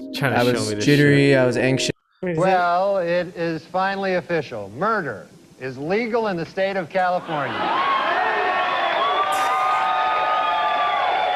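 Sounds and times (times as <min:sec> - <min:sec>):
speech: 0:00.2 - 0:07.9
large crowd cheering: 0:07.2 - 0:11.3.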